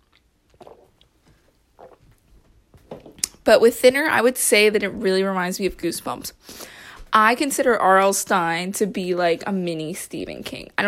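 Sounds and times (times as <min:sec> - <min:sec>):
mouth and swallowing noises: 0:00.0 - 0:02.5
person slurping a caffeine drink: 0:00.5 - 0:01.1, 0:01.8 - 0:02.1
speech: 0:03.4 - 0:10.8.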